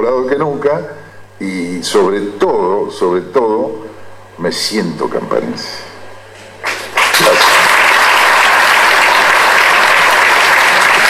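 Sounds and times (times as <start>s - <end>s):
speech: 0.0s - 5.9s
crowd applauding: 6.6s - 11.0s.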